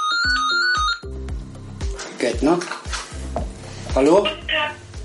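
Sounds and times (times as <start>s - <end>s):
telephone with bright melodic electronic ringtone: 0.0s - 1.2s
speech: 2.3s - 2.8s, 3.9s - 4.5s.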